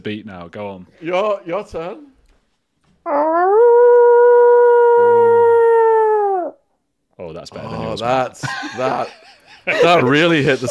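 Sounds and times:
speech: 0.0s - 2.1s, 3.1s - 3.7s, 7.2s - 10.6s
person imitating a wolf howl: 3.1s - 6.6s
laughter: 7.8s - 10.6s.

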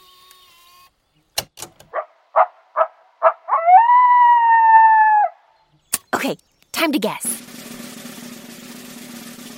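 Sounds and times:
coyote yipping and howling: 1.9s - 5.6s
speech: 6.3s - 7.3s.

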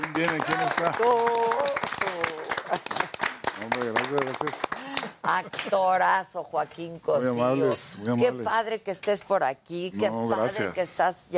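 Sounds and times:
several people clapping: 0.0s - 5.9s
speech: 0.2s - 3.0s, 3.6s - 11.3s.

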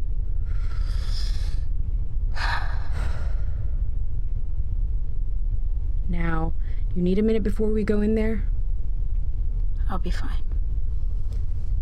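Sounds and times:
low steady rumble: 0.0s - 11.7s
person breathing in and out: 0.4s - 3.9s
speech: 6.4s - 8.6s, 9.9s - 10.6s.

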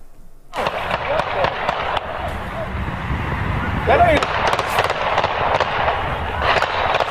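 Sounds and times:
rapid volley of gunshots at night during a youth baseball game in Chicago: 0.5s - 2.7s, 3.9s - 7.0s
voices amid chaotic commotion: 0.6s - 6.7s.

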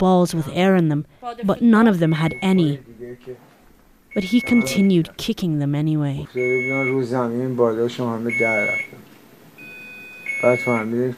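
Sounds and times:
speech: 0.0s - 3.5s, 4.2s - 9.0s, 10.4s - 11.1s
sustained high-pitched electronic beeps: 1.8s - 2.8s, 4.1s - 5.0s, 6.3s - 7.0s, 9.6s - 10.9s.

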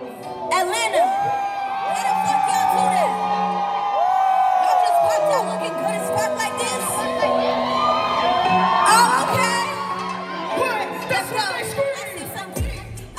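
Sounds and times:
large festival crowd cheering and yelling for a performer on stage: 0.0s - 13.1s
high whoops and shrieks: 0.9s - 10.6s.

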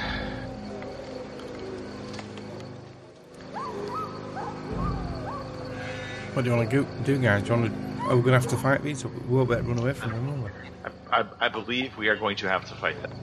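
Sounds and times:
wolf howls and yelps: 3.4s - 5.9s, 7.8s - 9.2s
speech: 6.4s - 13.2s.

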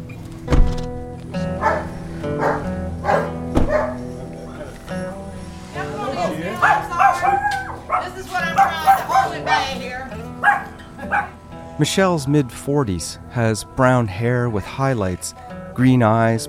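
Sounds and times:
large dog barking and howling: 1.4s - 4.1s, 6.5s - 11.4s
speech: 11.8s - 16.4s.

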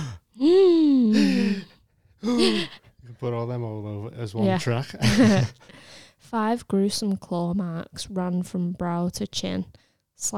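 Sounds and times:
several people gasping in horror: 0.0s - 2.8s
speech: 2.2s - 10.3s.

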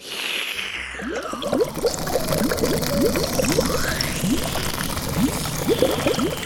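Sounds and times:
fizzy lake water sucked up through a nose hose: 0.0s - 6.4s.

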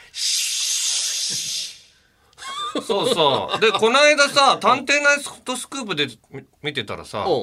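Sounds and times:
person imitating a cicada with their mouth: 0.2s - 1.9s
laughter: 2.4s - 4.9s
speech: 2.8s - 7.4s.

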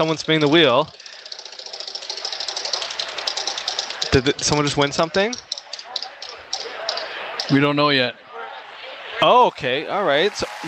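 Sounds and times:
speech: 0.0s - 1.0s, 4.2s - 5.5s, 7.5s - 8.2s, 9.2s - 10.6s
prize wheel spinning with rattling clicks: 0.0s - 7.6s.

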